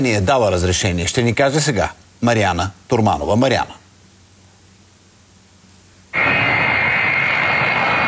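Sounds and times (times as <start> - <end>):
speech: 0.0 - 3.8
jet engines of a large transport aircraft roaring: 6.2 - 8.0.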